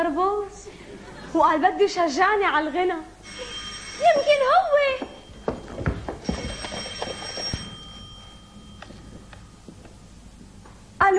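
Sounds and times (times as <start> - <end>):
speech: 0.0 - 5.2, 11.0 - 11.1
telephone ringing: 3.2 - 9.7.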